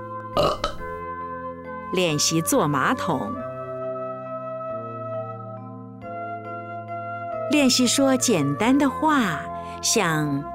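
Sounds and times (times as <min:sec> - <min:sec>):
loud gurgly burp: 0:00.4 - 0:01.0
speech: 0:01.9 - 0:03.5, 0:07.5 - 0:10.5.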